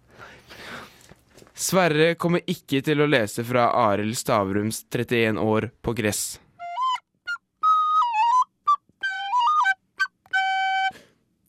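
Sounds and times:
speech: 1.6s - 6.4s
flute playing: 6.6s - 11.1s.

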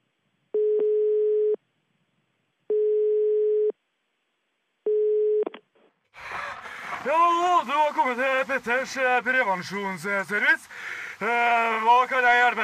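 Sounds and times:
telephone ringback tone while a call is placed: 0.6s - 1.6s, 2.7s - 3.7s, 4.9s - 5.4s
burst of rough noise: 6.2s - 8.2s
speech: 7.0s - 12.6s.

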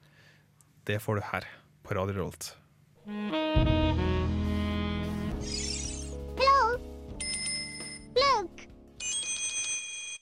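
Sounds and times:
speech: 0.9s - 4.0s
jazz cover of a video game main theme: 3.0s - 8.9s.

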